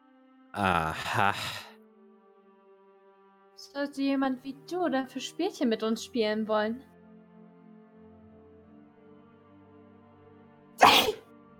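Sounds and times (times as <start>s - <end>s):
speech: 0.6s - 1.7s, 3.7s - 6.9s
person sneezing: 10.8s - 11.2s.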